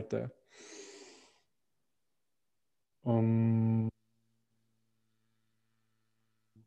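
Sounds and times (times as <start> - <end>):
speech: 0.0 - 0.8, 3.0 - 4.0
deep airy breath drawn in: 0.5 - 1.5.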